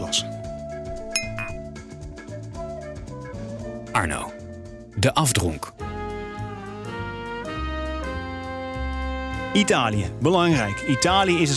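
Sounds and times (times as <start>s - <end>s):
music with a rhythmic low pulse: 0.0s - 11.5s
speech: 0.1s - 0.3s, 4.0s - 4.4s, 5.0s - 5.9s, 9.5s - 11.5s
glass of whisky clinking: 1.1s - 1.7s.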